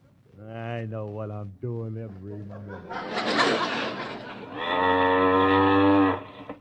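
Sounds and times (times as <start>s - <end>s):
speech: 0.4s - 6.3s
laughter: 2.2s - 4.6s
cow mooing: 4.4s - 6.5s.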